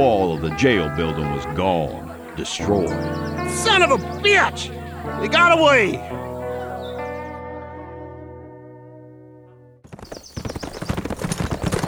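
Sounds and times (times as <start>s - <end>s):
speech: 0.0s - 6.3s
sustained musical chord: 0.0s - 9.7s
horse hooves clip-clopping: 9.8s - 11.8s.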